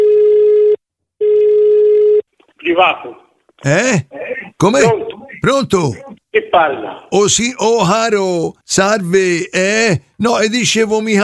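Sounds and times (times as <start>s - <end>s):
telephone ringing tone on the line: 0.0s - 2.2s
speech: 2.8s - 11.2s.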